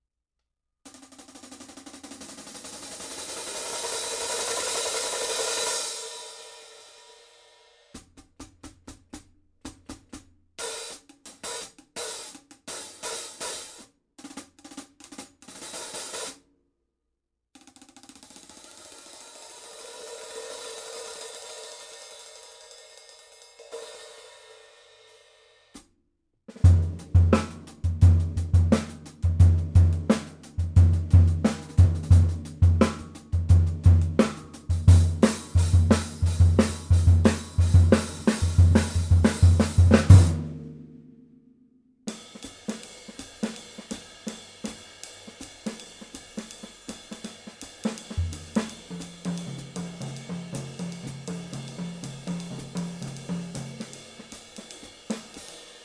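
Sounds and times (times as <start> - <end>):
14-inch cymbal: 2.7 - 8.0, 18.4 - 25.8, 26.7 - 40.9, 42.1 - 55.8.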